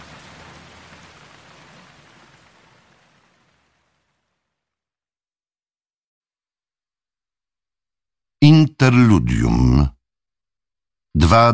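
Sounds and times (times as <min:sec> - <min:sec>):
heavy rain from a downpour drumming on a roof: 0:00.0 - 0:04.6
speech: 0:08.4 - 0:10.0, 0:11.2 - 0:11.5.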